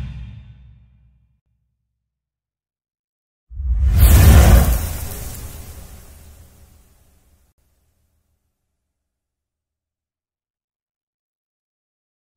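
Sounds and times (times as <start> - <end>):
sliding sound: 3.8 - 6.8.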